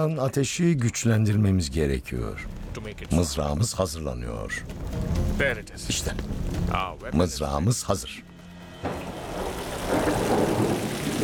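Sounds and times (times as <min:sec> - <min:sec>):
speech: 0:00.0 - 0:08.3
heavy rain pouring down: 0:02.2 - 0:07.6, 0:08.4 - 0:11.2.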